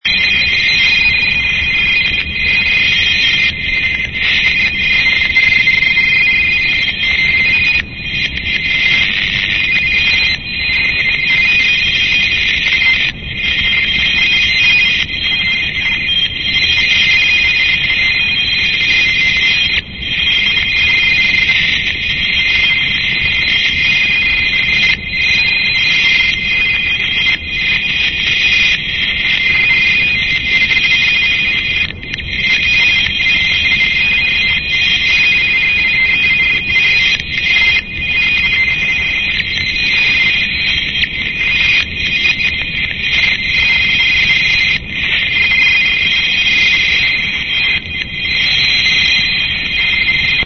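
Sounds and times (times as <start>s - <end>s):
meteo RTTY 50 baud signal from Bracknell: 0.0s - 50.4s.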